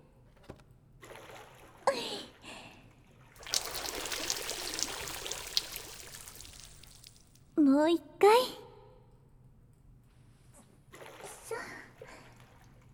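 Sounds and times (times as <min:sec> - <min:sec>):
water poured to rinse someone: 0:03.4 - 0:07.4
speech: 0:07.8 - 0:08.6.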